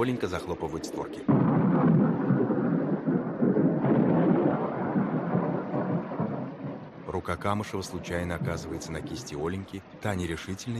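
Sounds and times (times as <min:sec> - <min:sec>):
speech: 0:00.0 - 0:02.0, 0:07.2 - 0:10.7
heavy rain falling on a dark forest: 0:00.0 - 0:10.7
rumbling thunder: 0:01.2 - 0:09.4.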